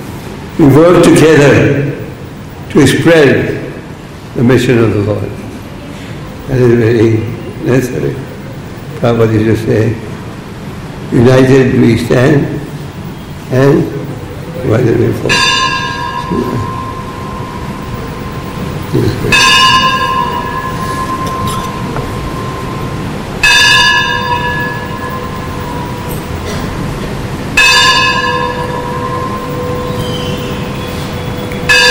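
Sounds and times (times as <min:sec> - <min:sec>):
speech: 0:00.6 - 0:02.0, 0:02.7 - 0:03.6, 0:04.4 - 0:05.4, 0:06.5 - 0:08.3, 0:09.0 - 0:10.1, 0:11.1 - 0:12.6, 0:13.5 - 0:14.0, 0:14.6 - 0:15.4, 0:16.3 - 0:16.8, 0:18.9 - 0:19.4
bell ringing: 0:15.2 - 0:31.8.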